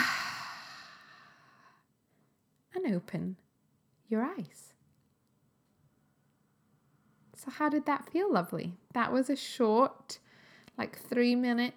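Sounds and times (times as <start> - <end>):
loud breath out through the mouth during a short meditation exercise: 0.0 - 1.5
speech: 2.9 - 3.4, 4.1 - 4.8, 7.4 - 10.2, 10.8 - 11.7.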